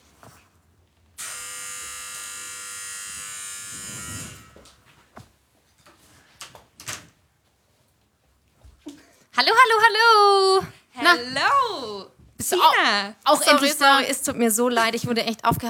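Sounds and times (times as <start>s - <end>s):
loud electric buzz from front door opener: 1.2s - 4.8s
speech: 9.4s - 15.6s.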